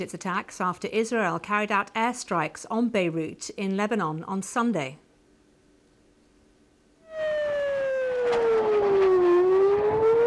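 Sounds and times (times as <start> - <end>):
speech: 0.0 - 5.0
air raid siren wailing: 7.0 - 10.2.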